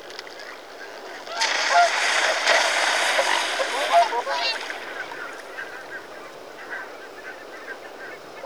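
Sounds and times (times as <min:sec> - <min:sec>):
Mute swan (Cygnus olor) honking: 0:01.3 - 0:07.0.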